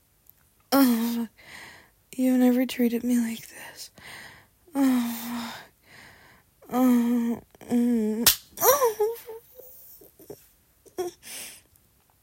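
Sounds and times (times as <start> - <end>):
drawn-out vocal moans and gasps: 0.8 - 1.6, 6.6 - 11.6
faint breathy sounds: 0.8 - 2.0, 3.4 - 8.2, 9.4 - 11.7
speech: 2.2 - 4.2, 4.8 - 5.7, 6.7 - 9.4
hand slapping skin: 8.3 - 8.5.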